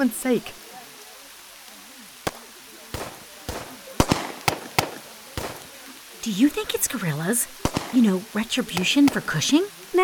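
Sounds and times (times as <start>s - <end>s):
speech: 0.0s - 0.6s, 6.2s - 10.0s
faint low noise: 0.0s - 10.0s
pistol shots fired from the hills: 2.3s - 6.9s, 7.6s - 10.0s.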